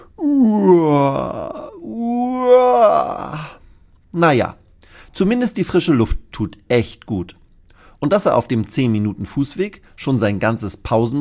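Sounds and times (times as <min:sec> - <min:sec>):
person yawning while walking along a footpath: 0:00.0 - 0:03.6
speech: 0:04.2 - 0:04.6, 0:05.2 - 0:07.4, 0:08.0 - 0:11.2.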